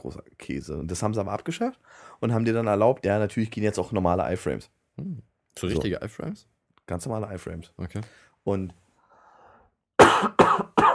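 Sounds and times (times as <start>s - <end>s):
speech: 0.0s - 8.8s
harsh coughs: 10.0s - 10.9s.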